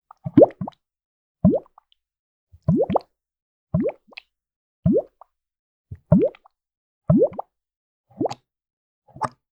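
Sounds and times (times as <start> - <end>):
blob bubble: 0.1 - 0.8, 1.4 - 1.8, 2.6 - 3.1, 3.8 - 4.2, 4.9 - 5.2, 6.0 - 6.5, 7.1 - 7.5, 8.2 - 8.4.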